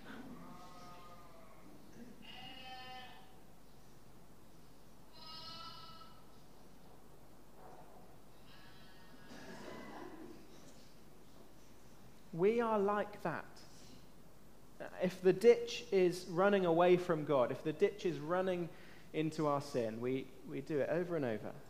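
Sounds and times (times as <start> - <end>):
steady low hum: 0.0 - 21.6
sheep bleating in a played video: 0.4 - 3.4, 5.1 - 6.3
speech: 12.4 - 13.7, 15.0 - 21.6.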